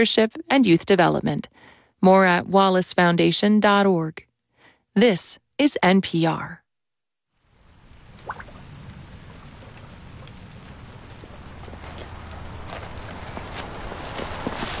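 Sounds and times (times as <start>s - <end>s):
speech: 0.0s - 4.3s, 5.0s - 6.6s
rain on a livestock and vegetable ranch: 7.4s - 14.7s
water dripping: 7.6s - 12.4s
hoof clops: 9.3s - 14.7s.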